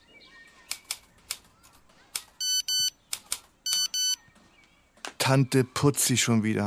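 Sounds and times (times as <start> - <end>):
mobile phone message notification tone: 2.4 - 2.9, 3.7 - 4.2
speech: 5.3 - 6.6.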